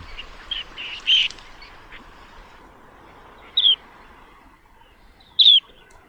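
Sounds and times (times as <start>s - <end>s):
low rumble of open wetland: 0.0s - 4.9s
curlew sandpiper calling in a lagoon: 0.0s - 6.0s
faint bird twitters: 0.0s - 6.0s.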